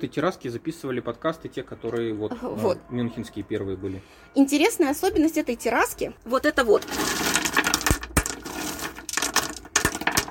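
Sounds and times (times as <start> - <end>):
speech: 0.0 - 7.3
small stones clattering onto a hard surface: 6.6 - 10.3.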